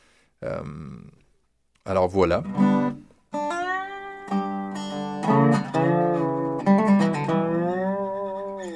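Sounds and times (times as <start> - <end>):
speech: 0.4 - 1.2, 1.8 - 3.1
square-neck dobro guitar played horizontally on the knee, plucked notes gliding: 2.4 - 8.7.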